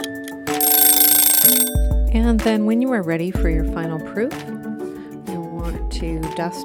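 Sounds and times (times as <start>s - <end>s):
kitchen timer ticking: 0.6s - 1.9s
speech: 2.2s - 4.5s, 6.0s - 6.6s.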